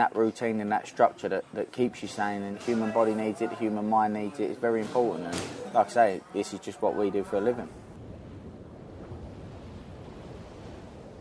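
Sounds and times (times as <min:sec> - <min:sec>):
speech: 0:00.0 - 0:07.8
ocean surf washing onto a beach: 0:05.6 - 0:11.1
wind buffeting the microphone: 0:07.6 - 0:11.1.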